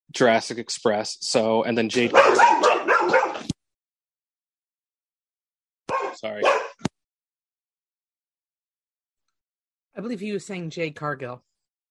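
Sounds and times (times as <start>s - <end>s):
speech: 0.1s - 2.8s, 6.2s - 6.6s, 10.0s - 11.5s
dog barking and yipping: 2.0s - 3.5s, 5.9s - 6.8s.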